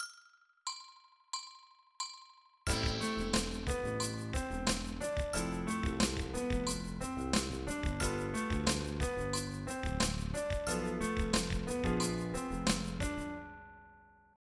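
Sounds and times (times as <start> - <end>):
backing track music: 2.7 - 13.7.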